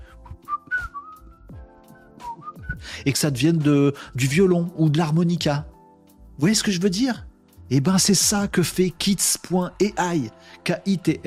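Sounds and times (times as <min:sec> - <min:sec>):
low rhythmic background: 0:00.0 - 0:11.2
person whistling a short melodic tune: 0:00.1 - 0:03.0
speech: 0:03.0 - 0:05.7, 0:06.4 - 0:11.2.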